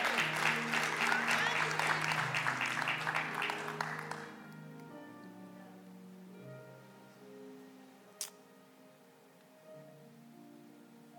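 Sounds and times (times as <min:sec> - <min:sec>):
crowd applauding: 0:00.0 - 0:04.4.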